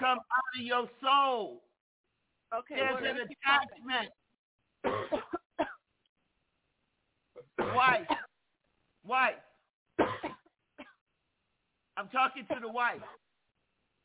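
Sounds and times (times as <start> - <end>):
speech: 0.0 - 1.7, 2.5 - 4.2, 4.8 - 5.8, 7.4 - 8.2, 9.0 - 10.4, 12.0 - 13.2
harsh coughs: 4.8 - 5.8, 7.4 - 8.3, 10.0 - 11.0, 12.5 - 13.2.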